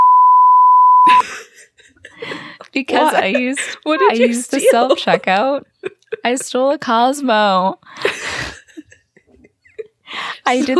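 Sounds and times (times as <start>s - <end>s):
censor bleep tone: 0.0s - 1.1s
laughter: 1.1s - 6.6s, 8.0s - 10.7s
speech: 2.8s - 8.2s, 10.2s - 10.7s.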